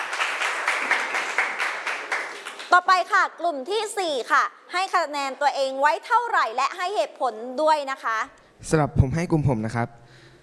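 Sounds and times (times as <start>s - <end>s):
children clapping for a classmate: 0.0s - 2.8s
speech: 2.7s - 10.0s.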